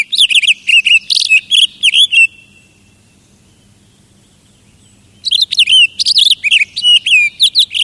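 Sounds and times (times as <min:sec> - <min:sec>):
Townsend's solitaire singing in a Pacific Northwest forest: 0:00.0 - 0:07.8.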